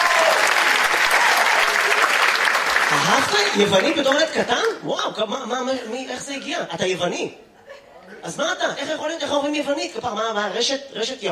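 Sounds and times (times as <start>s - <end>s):
audience applause: 0.0s - 4.8s
speech: 3.1s - 7.5s, 8.2s - 11.2s.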